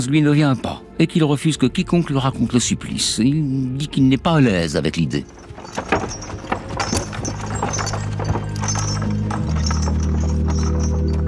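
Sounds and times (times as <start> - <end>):
speech: 0.0 - 5.9
horse-drawn cart rolling along: 4.3 - 11.2
horse hooves clopping: 4.5 - 11.2.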